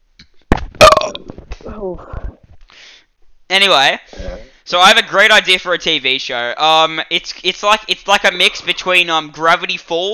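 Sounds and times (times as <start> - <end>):
loud croaky belch: 0.8 - 1.3
speech: 1.7 - 2.2, 3.5 - 10.1.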